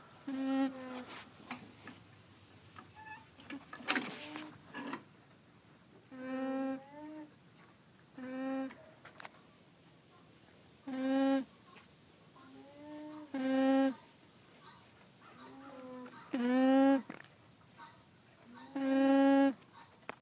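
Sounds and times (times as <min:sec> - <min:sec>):
alpacas humming: 0:00.0 - 0:01.2, 0:06.1 - 0:07.4, 0:08.2 - 0:08.8, 0:10.8 - 0:11.6, 0:12.4 - 0:14.1, 0:14.7 - 0:17.3, 0:18.5 - 0:19.6.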